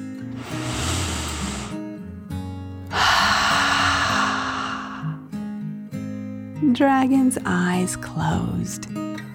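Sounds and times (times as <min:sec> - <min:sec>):
deep breathing in and out: 0:00.2 - 0:01.9, 0:02.9 - 0:05.3
speech: 0:06.7 - 0:09.0.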